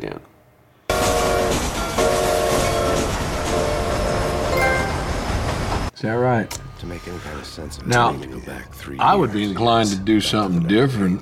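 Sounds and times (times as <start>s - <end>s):
loud train horn blaring: 0.9s - 5.5s
speech: 6.3s - 11.2s.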